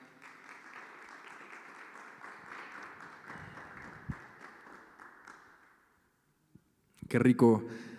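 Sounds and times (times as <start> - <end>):
crowd applause: 0.0 - 5.6
speech: 7.1 - 7.9.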